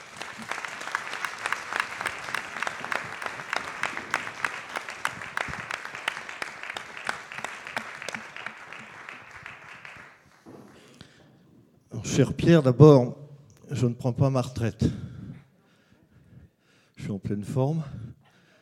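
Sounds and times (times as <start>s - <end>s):
audience applauding a parliamentarian: 0.0s - 11.1s
speech: 12.2s - 15.1s, 17.3s - 18.0s.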